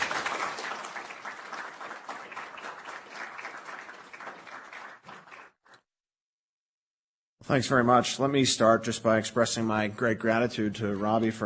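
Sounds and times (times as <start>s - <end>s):
audience applause in a room full of people: 0.0s - 5.8s
speech: 7.5s - 11.4s.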